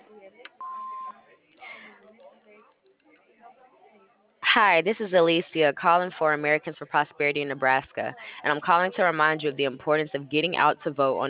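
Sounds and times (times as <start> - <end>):
answering machine electronic beep over telephone audio: 0.6 - 1.2
speech: 4.5 - 11.2.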